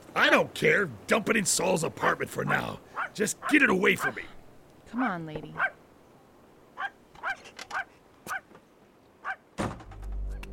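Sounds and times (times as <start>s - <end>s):
speech: 0.2s - 5.8s
dog barking in sharp yelps: 2.5s - 4.2s, 5.6s - 5.8s, 6.8s - 8.5s, 9.2s - 9.4s
thud: 9.6s - 10.2s.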